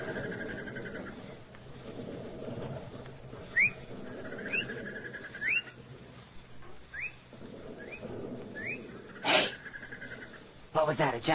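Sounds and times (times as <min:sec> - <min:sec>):
steady low rumble of noise: 0:00.0 - 0:11.3
bird mating call of rising whistled chirps: 0:03.5 - 0:05.8, 0:06.9 - 0:07.2, 0:07.8 - 0:10.2
speech: 0:10.9 - 0:11.3.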